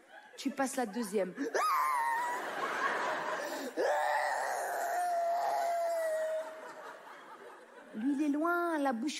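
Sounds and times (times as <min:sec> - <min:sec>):
laughter: 0:00.0 - 0:08.2
speech: 0:00.4 - 0:02.0, 0:08.0 - 0:09.1
woman imitating exaggerated crying with wavering wails: 0:01.4 - 0:02.5, 0:03.4 - 0:06.9.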